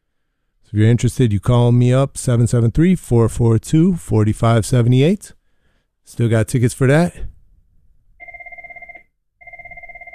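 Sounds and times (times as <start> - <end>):
speech: 0.7 - 5.4, 6.1 - 7.4
telephone ringing: 8.2 - 10.1.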